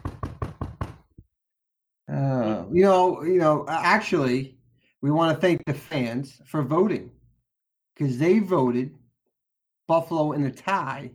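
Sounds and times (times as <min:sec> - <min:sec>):
knocking on wood: 0:00.0 - 0:01.2
speech: 0:02.1 - 0:07.2, 0:08.0 - 0:09.0, 0:09.9 - 0:11.1.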